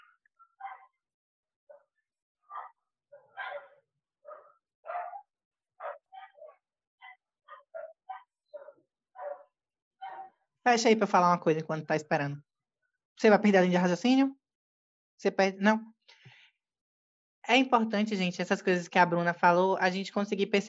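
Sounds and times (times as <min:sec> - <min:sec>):
dogs fighting and barking: 0:00.0 - 0:01.0, 0:02.5 - 0:10.4
speech: 0:10.6 - 0:12.5, 0:13.2 - 0:14.4, 0:15.2 - 0:15.9, 0:17.5 - 0:20.6.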